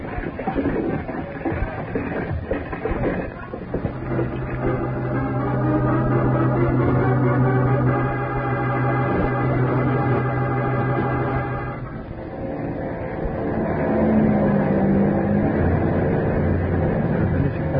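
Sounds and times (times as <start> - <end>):
propeller airplane engine droning as plane lands on a landing strip: 0.2 - 17.7.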